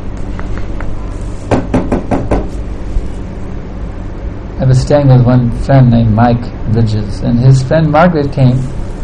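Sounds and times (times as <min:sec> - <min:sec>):
low steady hum: 0:00.0 - 0:09.0
firm knocks on a door: 0:01.5 - 0:02.5
speech: 0:04.7 - 0:08.8.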